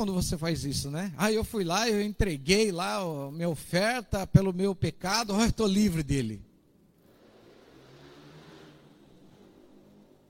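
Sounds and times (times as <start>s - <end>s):
speech: 0.0s - 6.5s
quiet motorcycle passing by outside: 7.0s - 10.2s.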